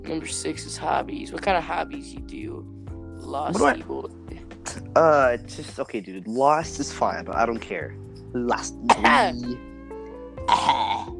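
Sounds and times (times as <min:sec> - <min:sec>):
speech: 0:00.0 - 0:04.4, 0:05.0 - 0:09.7
throaty cough: 0:08.8 - 0:09.6, 0:10.5 - 0:11.1.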